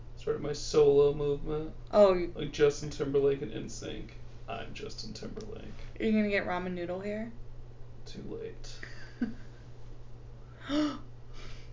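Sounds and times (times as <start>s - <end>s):
faint low hum: 0.0s - 11.7s
speech: 0.2s - 7.4s, 8.1s - 9.5s, 10.7s - 11.1s
sharp gasp followed by breathy exhale: 10.6s - 11.7s.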